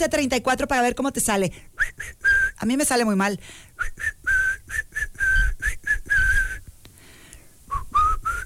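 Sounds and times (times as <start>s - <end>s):
speech: 0.0s - 4.9s
person whistling a lively choppy tune: 1.8s - 2.6s, 3.8s - 6.7s, 7.7s - 8.4s.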